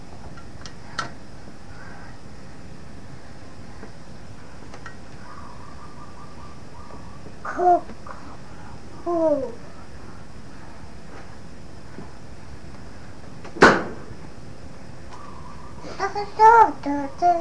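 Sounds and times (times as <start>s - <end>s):
small child babbling softly: 7.4s - 8.0s, 9.0s - 9.6s, 15.8s - 17.3s
refrigerator door pushed and knocking with a sharp thud: 13.6s - 14.0s.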